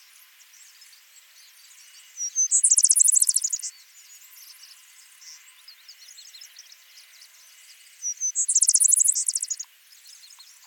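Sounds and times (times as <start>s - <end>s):
Vesper sparrow Pooecetes gramineus song of whistles and high jumbled trill: 0.1s - 10.6s
faint chirps: 2.0s - 3.8s, 8.0s - 10.6s.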